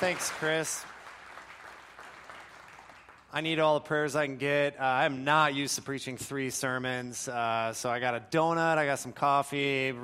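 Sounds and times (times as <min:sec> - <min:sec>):
speech: 0:00.0 - 0:01.0, 0:03.3 - 0:10.0
crowd applauding: 0:00.0 - 0:03.4.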